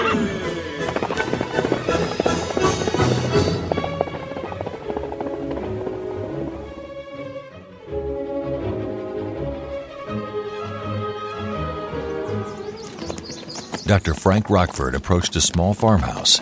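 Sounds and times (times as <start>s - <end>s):
orchestral music: 0.0s - 13.1s
thundering galloping horse hoofbeats: 0.4s - 7.4s, 12.3s - 16.4s
speech: 13.9s - 16.4s.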